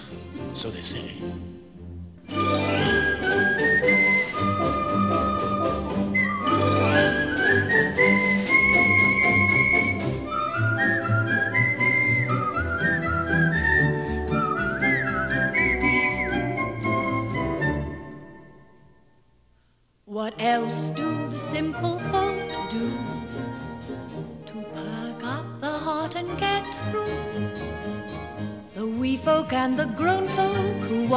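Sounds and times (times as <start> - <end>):
instrumental accompaniment: 0.0 - 19.2, 20.4 - 31.1
speech: 0.6 - 1.6, 2.3 - 3.0
person whistling a tune: 2.3 - 18.4.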